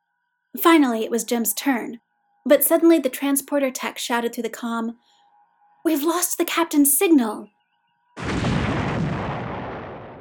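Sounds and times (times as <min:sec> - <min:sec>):
speech: 0:00.6 - 0:05.1, 0:05.8 - 0:07.6
space station exploding with a loud boom and roaring rumble: 0:08.2 - 0:10.1.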